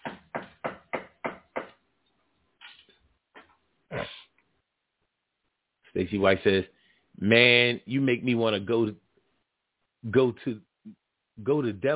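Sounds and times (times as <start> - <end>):
raps on a wooden surface: 0.0 - 1.8
speech: 6.0 - 9.0, 10.0 - 11.9.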